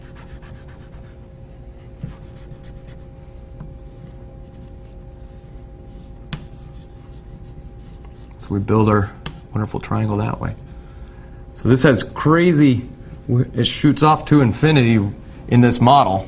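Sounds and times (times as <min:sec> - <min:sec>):
blue marker being erased from a drawing: 0:00.0 - 0:01.2, 0:02.0 - 0:08.4, 0:10.3 - 0:10.8
speech: 0:08.5 - 0:10.6, 0:11.6 - 0:16.2.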